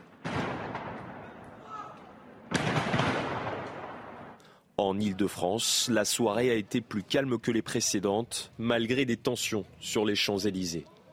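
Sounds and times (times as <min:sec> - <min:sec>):
stockpile of fireworks exploding and catching fire near homes in Strasbourg: 0:00.0 - 0:01.6, 0:02.4 - 0:04.4
speech: 0:04.8 - 0:11.0.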